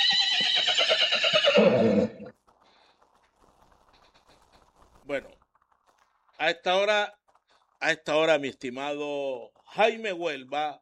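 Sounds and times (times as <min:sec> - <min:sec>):
horse whinnying in a long shrill quavering neigh: 0:00.0 - 0:02.3
speech: 0:05.1 - 0:05.4, 0:06.4 - 0:07.2, 0:07.8 - 0:10.8.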